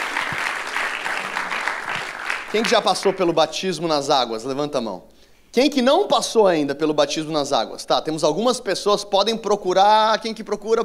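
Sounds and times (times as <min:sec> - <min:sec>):
church audience applauding the people who were baptized: 0:00.0 - 0:03.4
speech: 0:02.5 - 0:10.8.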